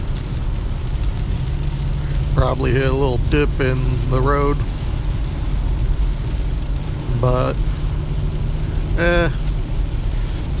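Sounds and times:
car engine and road rumble in rain: 0.0 - 10.5
speech: 2.4 - 4.8, 7.2 - 7.7, 9.0 - 9.4.

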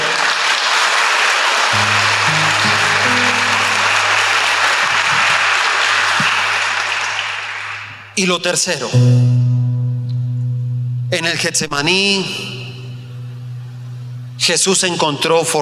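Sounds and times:
audience applauding: 0.0 - 8.2
low keyboard chords: 1.8 - 6.8, 9.0 - 15.6
speech: 8.2 - 9.3, 11.3 - 12.6, 14.4 - 15.6.

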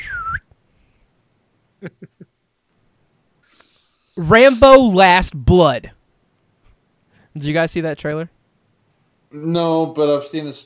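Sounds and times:
slide whistle swooping down and up: 0.0 - 0.4
soft hiss: 0.0 - 10.6
speech: 1.8 - 2.3, 4.2 - 6.0, 7.4 - 8.3, 9.3 - 10.6.

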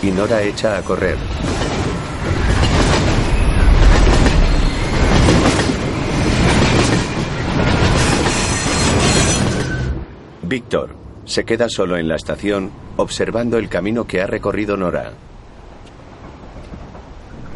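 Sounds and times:
speech: 0.0 - 2.5, 10.5 - 15.3
train wheels clickety-clacking on rails: 0.0 - 9.9, 13.6 - 17.5
train racing at full speed through a station: 0.0 - 17.5
train wheel squeal: 8.0 - 10.0.

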